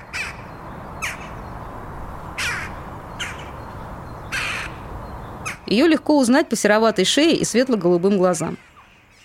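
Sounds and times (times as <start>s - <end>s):
jackdaw calls: 0.0s - 5.8s
outdoor noise: 0.0s - 9.2s
speech: 5.7s - 8.7s.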